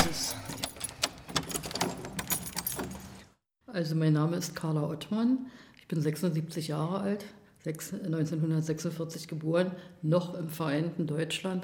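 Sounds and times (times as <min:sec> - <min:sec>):
bunch of keys jangling: 0:00.0 - 0:03.4
speech: 0:03.8 - 0:11.6.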